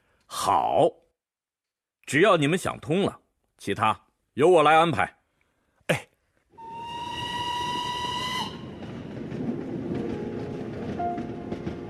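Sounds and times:
speech: 0.4s - 1.0s, 2.1s - 5.2s, 5.9s - 6.1s
train steam whistle: 6.6s - 8.8s
train to Yan'an rumbling with rolling carriages: 7.1s - 11.8s.

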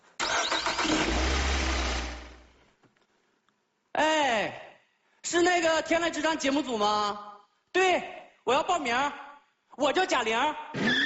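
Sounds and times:
car engine starting: 0.2s - 2.5s
speech: 5.8s - 9.2s, 9.8s - 10.9s.

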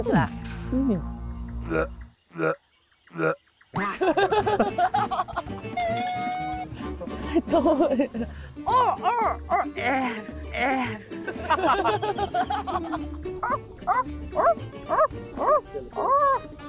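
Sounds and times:
speech: 0.0s - 1.1s, 1.7s - 6.5s, 7.4s - 16.6s
laughter: 3.8s - 13.2s
dog barking and yipping: 13.4s - 16.4s.

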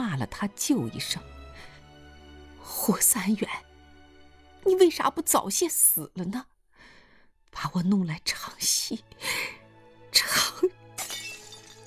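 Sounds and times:
speech: 0.2s - 1.7s, 2.9s - 3.7s, 4.6s - 6.5s, 7.6s - 10.8s
glass IV drip bottle smashing on the floor: 11.0s - 11.8s.

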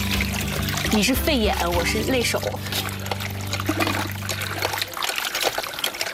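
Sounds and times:
tap water trickling while rinsing pork offal: 0.0s - 6.1s
speech: 0.9s - 3.0s.

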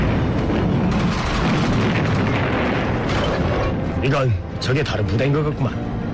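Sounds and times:
heavy cannon shell exploding: 0.0s - 4.0s
speech: 4.0s - 6.0s.

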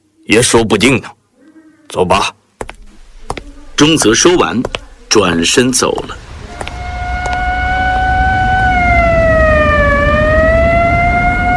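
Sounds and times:
speech: 0.3s - 1.2s, 1.9s - 2.4s, 3.8s - 6.4s
low rumble of traffic and engines: 2.7s - 11.5s
police car and military vehicle sirens wailing on Xinjun Street: 6.3s - 11.5s.

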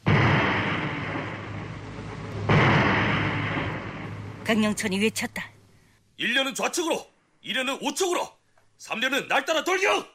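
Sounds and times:
landmines detonating among a group of enemy soldiers: 0.0s - 4.9s
speech: 4.5s - 5.5s, 6.2s - 10.1s.

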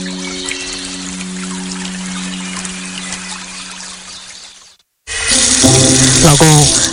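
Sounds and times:
water running from a tap: 5.1s - 6.9s.

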